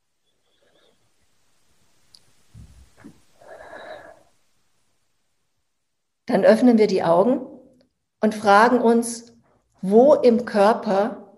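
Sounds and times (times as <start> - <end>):
quiet hiss: 0.0 - 11.3
deep breath in and out with a nasal snort: 3.4 - 4.4
speech: 6.3 - 7.5, 8.2 - 11.2.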